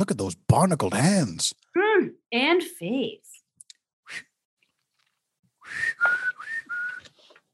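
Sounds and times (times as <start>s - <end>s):
speech: 0.0s - 3.3s
person whistling a tune on the deck of a boat at sea: 5.6s - 7.2s.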